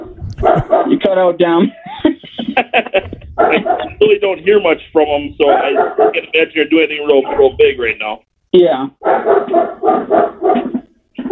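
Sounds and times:
dogs barking excitedly: 0.0 - 1.1, 2.6 - 4.5, 5.4 - 7.6, 9.0 - 11.2
speech: 0.4 - 1.8, 2.6 - 10.7
laughter: 0.4 - 8.0.

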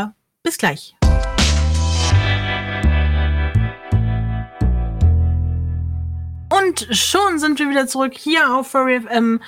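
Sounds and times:
speech: 0.0 - 1.0, 6.7 - 9.4
electronic music with synth chords and deep bass: 1.0 - 7.6.

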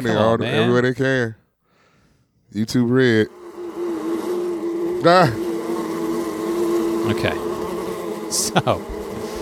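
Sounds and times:
speech: 0.0 - 1.4, 2.5 - 3.4, 5.0 - 5.4, 7.0 - 7.5, 8.3 - 8.9
droning buzz of bees: 2.7 - 9.3.

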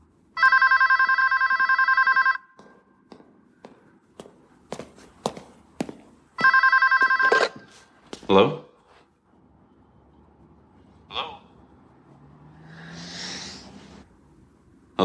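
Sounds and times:
telephone bell ringing on an outgoing call: 0.4 - 2.6, 6.4 - 7.9
footsteps: 2.5 - 9.1
speech: 8.3 - 8.6.

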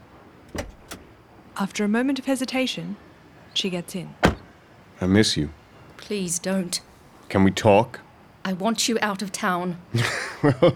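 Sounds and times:
car door clunk: 0.4 - 1.2, 4.2 - 4.6
speech: 1.6 - 3.0, 3.6 - 4.2, 5.0 - 10.7
laughter: 10.0 - 10.7.

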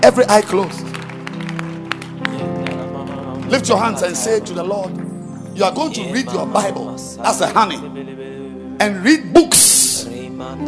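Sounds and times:
speech: 0.0 - 0.9, 3.5 - 8.2, 8.8 - 9.8, 10.4 - 10.6
audience at a church service clapping hands: 0.0 - 6.0.

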